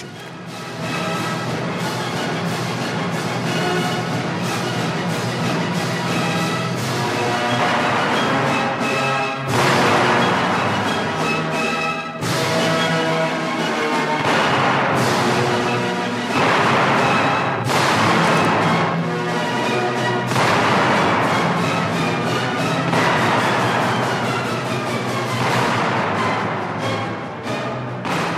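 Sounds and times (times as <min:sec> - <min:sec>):
full orchestra playing loud triumphant music: 0:00.0 - 0:28.3
heavy booming cannon blasts: 0:16.3 - 0:19.0, 0:20.3 - 0:21.7, 0:22.3 - 0:24.6.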